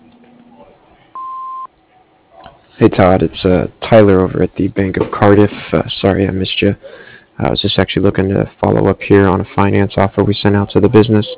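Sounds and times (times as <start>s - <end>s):
answering machine beep: 1.2s - 1.7s
speech: 2.8s - 11.3s.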